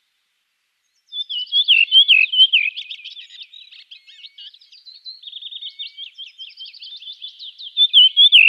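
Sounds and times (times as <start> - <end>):
redwing song with descending whistled notes and scratchy twittering: 0.9 - 8.4.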